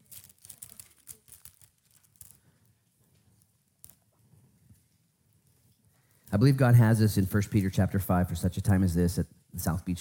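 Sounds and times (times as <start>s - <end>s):
many thin paper pages turning and rustling: 0.0s - 2.5s
speech: 6.3s - 10.0s.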